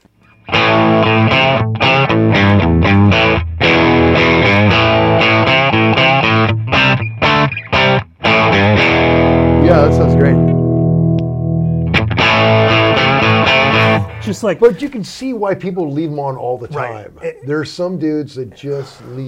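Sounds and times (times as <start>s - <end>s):
Stratocaster-style electric guitar through a pedal with gain cranked, small-amp breakup distortion: 0.3s - 14.4s
speech: 14.4s - 19.2s.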